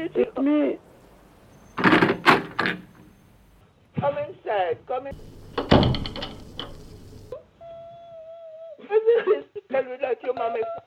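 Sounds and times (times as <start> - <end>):
speech: 0.0 - 0.9, 2.6 - 2.9, 4.0 - 6.4, 8.9 - 10.8
door knocking or handle and latch noise: 5.5 - 6.9.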